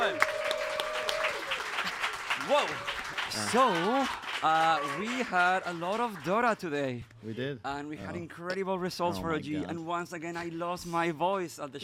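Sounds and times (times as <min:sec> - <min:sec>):
live crowd clapping and cheering: 0:00.0 - 0:06.9
speech: 0:02.5 - 0:11.8.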